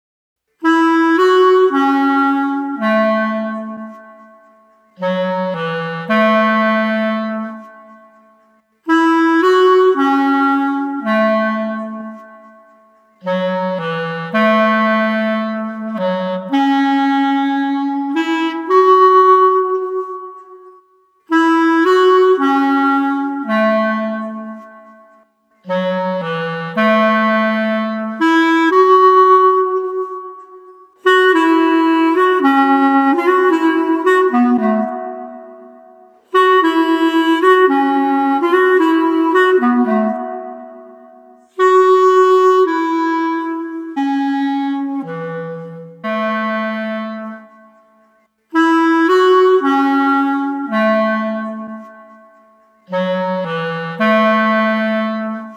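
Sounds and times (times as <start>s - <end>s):
melancholy street clarinet melody: 0.5s - 55.5s.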